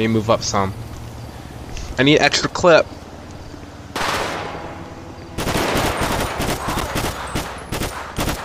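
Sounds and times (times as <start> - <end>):
speech: 0.0 - 0.9, 2.0 - 3.0
AK rifle gunfire in a police video game: 4.0 - 4.8, 5.4 - 8.4.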